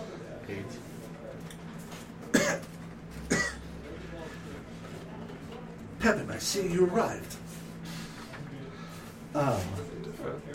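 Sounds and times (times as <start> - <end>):
speech: 0.5 - 1.0, 6.0 - 7.4, 9.4 - 10.5
person imitating a hunched gnome coughing and hacking: 2.3 - 3.6.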